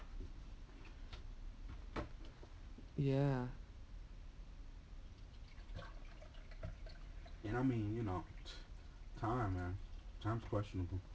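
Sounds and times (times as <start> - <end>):
speech: 3.0 - 3.6, 7.5 - 8.6, 9.2 - 11.1
water pouring into a container: 5.2 - 10.8.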